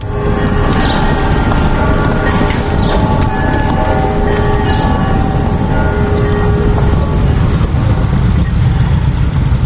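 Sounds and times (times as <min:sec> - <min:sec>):
convoy of powerful motorcycle engines roaring past: 0:00.0 - 0:09.6.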